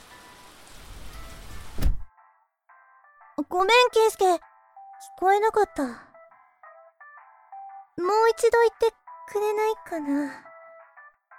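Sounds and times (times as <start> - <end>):
rain falling as a shower begins: 0.0 - 1.8
speech: 3.4 - 6.1, 8.0 - 10.5.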